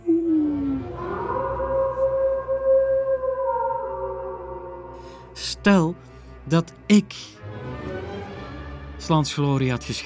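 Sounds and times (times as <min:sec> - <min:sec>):
wolves howling: 0:00.8 - 0:05.0
speech: 0:05.6 - 0:07.4, 0:09.0 - 0:10.0.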